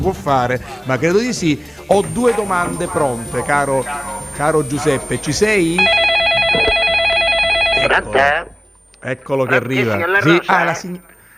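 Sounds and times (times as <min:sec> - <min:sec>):
speech: 0:00.0 - 0:06.1, 0:07.9 - 0:11.1
telephone line ring tone as a caller phones in: 0:01.8 - 0:11.3.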